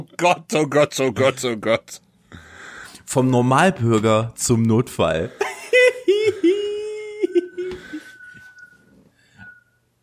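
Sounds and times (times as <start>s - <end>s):
speech: 0.0s - 2.4s, 3.1s - 5.5s
voiced laugh-like sounds: 5.3s - 8.0s
thin high-pitched whistle of wind through gaps in apartment: 7.5s - 9.9s.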